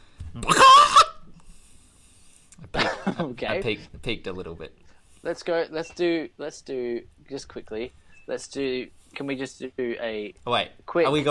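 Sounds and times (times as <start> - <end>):
person squawking in imitation of a chicken: 0.4 - 1.3
speech: 3.1 - 11.2.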